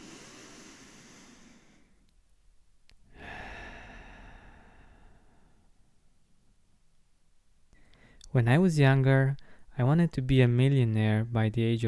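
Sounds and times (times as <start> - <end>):
deep breath in through the nose and out through the mouth: 0.0 - 2.0, 3.1 - 6.0, 7.8 - 8.2
speech: 8.3 - 11.8.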